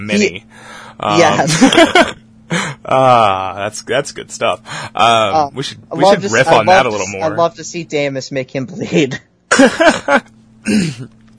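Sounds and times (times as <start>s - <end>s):
speech: 0.0s - 11.2s
faint steady hum: 0.0s - 11.3s
laughter: 1.2s - 3.4s, 9.5s - 10.3s
person coughing: 9.5s - 11.1s.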